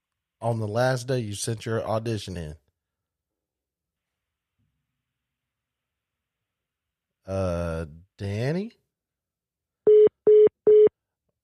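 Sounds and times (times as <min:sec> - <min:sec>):
speech: 0:00.4 - 0:02.6, 0:07.3 - 0:08.8
telephone line tone beeps after a dropped call: 0:09.9 - 0:10.9.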